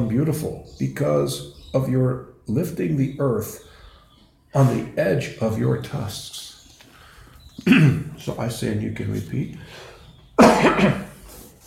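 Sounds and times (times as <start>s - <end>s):
speech: 0.1s - 3.7s, 4.5s - 6.5s, 7.6s - 11.1s
lecturer clearing throat during a scripture class: 7.6s - 8.1s, 10.4s - 11.2s.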